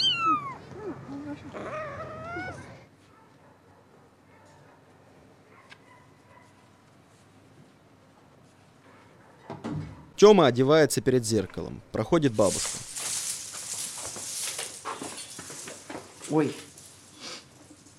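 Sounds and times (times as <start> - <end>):
cat meowing in a sandbox: 0.0 - 0.9, 1.6 - 2.9
speech: 10.2 - 12.9, 16.3 - 16.7.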